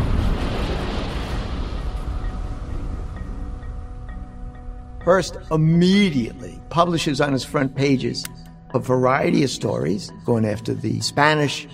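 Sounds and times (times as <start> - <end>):
massive ship explosion roaring: 0.0 - 4.0
speech: 5.1 - 11.7.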